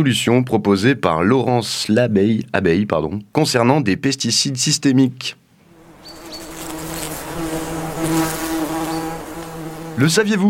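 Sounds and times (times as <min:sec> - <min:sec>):
speech: 0:00.0 - 0:05.4, 0:10.0 - 0:10.4
honeybees buzzing: 0:05.6 - 0:10.2.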